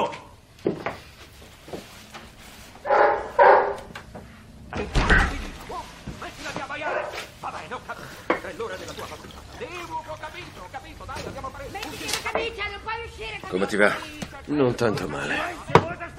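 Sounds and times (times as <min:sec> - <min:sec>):
thumping and shuffling: 0:00.6 - 0:12.5
dog barking: 0:02.8 - 0:03.9, 0:06.8 - 0:07.2
indistinct voices: 0:02.8 - 0:16.1
speech: 0:13.8 - 0:15.6.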